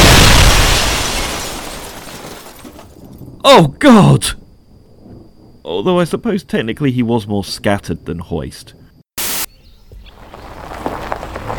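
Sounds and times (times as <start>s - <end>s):
bomb explosion: 0.0s - 3.2s
speech: 3.4s - 4.4s, 5.6s - 8.8s.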